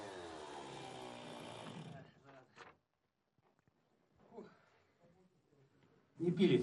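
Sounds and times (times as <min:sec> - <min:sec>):
chainsaw with dull chain cutting through river ice: 0:00.0 - 0:02.1.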